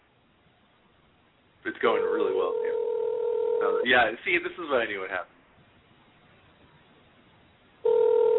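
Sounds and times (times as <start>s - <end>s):
speech: 1.7s - 3.0s, 3.6s - 5.3s
loud steady electronic telephone ring tone: 1.9s - 3.8s, 7.8s - 8.3s.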